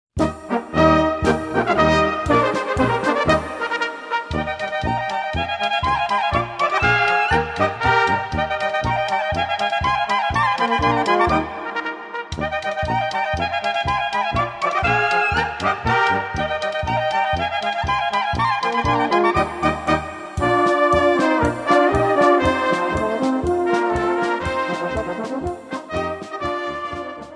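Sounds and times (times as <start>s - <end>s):
bravura clarinet playing: 0.2s - 27.3s.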